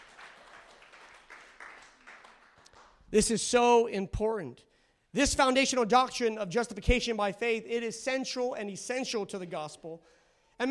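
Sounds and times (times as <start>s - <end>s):
church congregation clapping during a sermon: 0.0s - 3.2s
speech: 3.1s - 10.7s.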